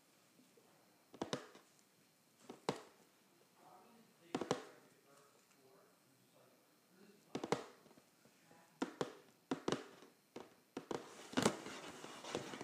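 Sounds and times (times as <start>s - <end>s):
fingers tapping on a cardboard box: 1.1s - 1.6s, 2.5s - 2.9s, 4.3s - 4.7s, 7.3s - 7.8s, 8.8s - 12.6s
fingers scratching a cardboard box with rustling scrapes: 11.0s - 12.6s.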